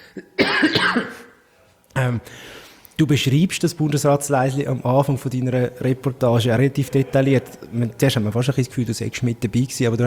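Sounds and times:
person coughing during an interview: 0.0s - 1.4s
speech: 0.2s - 1.1s, 2.0s - 10.0s.

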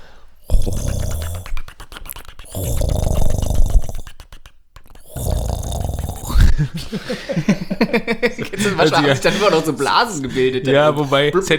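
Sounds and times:
person imitating a gurgling drip coffee machine with their voice: 0.4s - 6.8s
speech: 0.7s - 1.0s, 6.6s - 11.5s
laughter: 6.4s - 11.5s.

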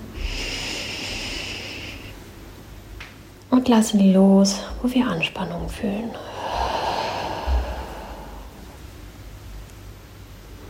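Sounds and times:
long deep breath drawn in through the nose: 0.0s - 2.2s, 6.2s - 9.1s
brief soft exhale: 0.2s - 2.2s, 6.1s - 9.0s
speech: 3.5s - 6.3s.

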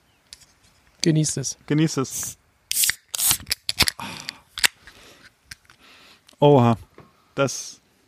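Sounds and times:
speech: 1.0s - 2.4s, 6.4s - 7.8s
blood-peach and passion-fruit beer can cracked open with fizzy hiss: 2.7s - 4.0s.

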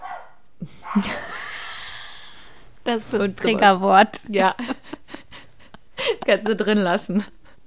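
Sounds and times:
dog barking: 0.0s - 1.2s
speech: 0.6s - 1.3s, 2.8s - 4.9s, 6.3s - 7.4s
laughter: 4.4s - 7.3s.

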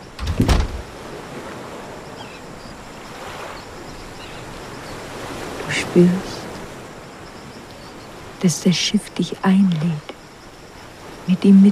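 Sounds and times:
wooden plank knocking onto a pier: 0.2s - 0.8s
speech: 0.4s - 0.7s, 6.0s - 6.3s, 8.4s - 10.1s, 11.3s - 11.6s.

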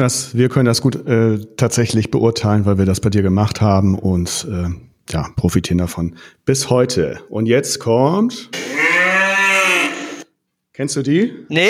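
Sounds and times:
speech: 0.0s - 8.8s, 10.8s - 11.6s
cow mooing in a cowshed: 8.5s - 10.3s.

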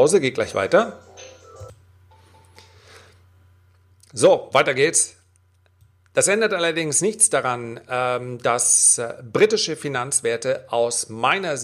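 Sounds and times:
speech: 0.0s - 1.1s, 4.1s - 5.2s, 6.1s - 11.6s
low steady hum: 0.0s - 11.6s
telephone ringing with thin electronic tone: 0.8s - 2.4s.

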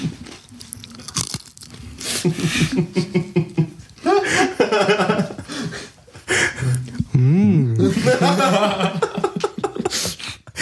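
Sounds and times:
crunchy snack being bitten and chewed while tasted: 0.0s - 2.5s
speech: 2.2s - 4.9s
laughter: 2.2s - 10.6s
vocal sounds: 6.4s - 8.2s.

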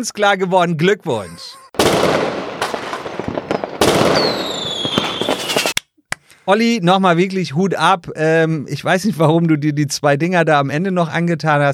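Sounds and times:
speech: 0.0s - 2.4s, 4.2s - 4.5s, 6.4s - 11.7s
loud fireworks crackling and popping: 1.8s - 5.8s
rising firework whistle: 3.5s - 5.8s.

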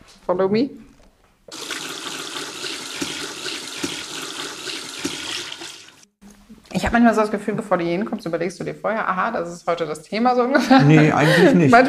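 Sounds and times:
speech: 0.3s - 0.8s, 6.9s - 11.8s
tap water running while hair is washed: 1.5s - 6.2s
laughter: 10.5s - 11.8s.

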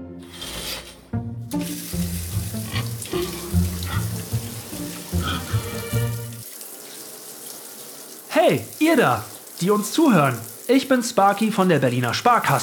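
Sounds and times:
soft music: 0.0s - 6.6s
water from a running shower: 0.2s - 12.6s
speech: 8.4s - 12.6s.

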